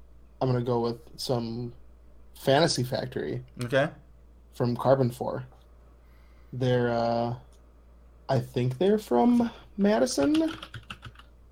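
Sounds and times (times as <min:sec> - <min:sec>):
speech: 0:00.4 - 0:01.8, 0:02.4 - 0:04.0, 0:04.6 - 0:05.6, 0:06.5 - 0:07.5, 0:08.3 - 0:10.8
typing on a loud computer keyboard: 0:10.1 - 0:11.3.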